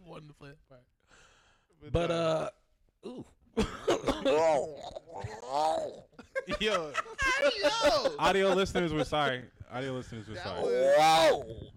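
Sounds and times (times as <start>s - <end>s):
speech: 0.2s - 11.7s
person clearing throat: 2.1s - 6.2s
short coughs: 3.6s - 4.5s
strained groaning vocal sounds: 4.4s - 6.2s, 10.6s - 11.7s
laughter: 6.2s - 9.4s.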